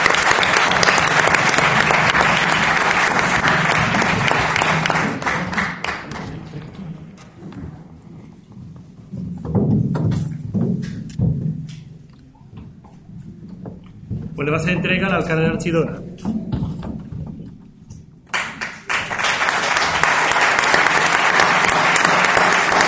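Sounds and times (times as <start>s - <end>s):
audience applause at the inaugural gala of a dog fair: 0.0s - 6.9s, 18.3s - 22.8s
thumps: 7.4s - 18.3s
speech: 14.5s - 16.0s.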